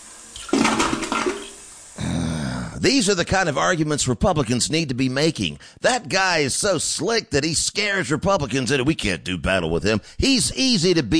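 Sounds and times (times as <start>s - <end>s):
toilet flushing: 0.0s - 2.0s
speech: 2.8s - 11.1s.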